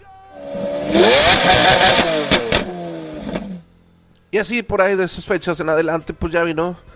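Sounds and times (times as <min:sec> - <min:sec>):
Lamborghini sports car engine revving: 0:00.4 - 0:03.7
speech: 0:04.3 - 0:06.9.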